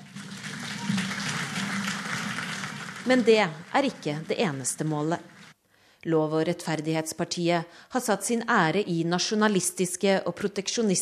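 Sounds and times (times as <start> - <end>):
large crowd of political party supporters clapping at a rally in Poland: 0.0 - 5.5
speech: 3.1 - 5.4, 6.0 - 11.0.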